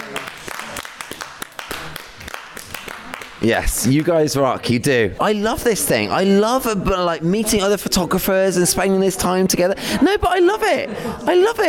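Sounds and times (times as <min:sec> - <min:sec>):
small group clapping: 0:00.0 - 0:04.3
speech: 0:03.4 - 0:11.6.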